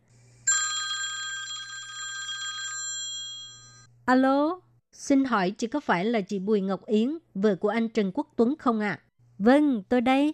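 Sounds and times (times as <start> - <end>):
telephone ringing with a trilling bell: 0.5 - 3.9
speech: 4.1 - 10.3.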